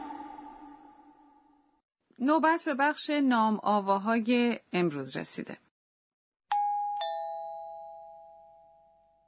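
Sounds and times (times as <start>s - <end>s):
speech: 2.2s - 5.7s
two-tone ding-dong chime for a correct answer: 6.5s - 9.2s.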